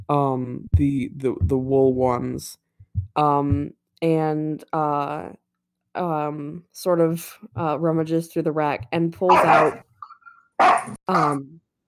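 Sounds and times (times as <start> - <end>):
speech: 0.1 - 5.4, 6.0 - 9.9, 10.6 - 11.6
dog barking at another dog: 9.3 - 9.8, 10.6 - 11.0
dog whining: 9.3 - 9.8.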